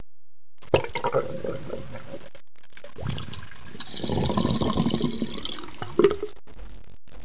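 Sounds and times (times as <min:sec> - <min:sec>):
water going down a drain: 0:00.7 - 0:02.2, 0:03.0 - 0:06.4.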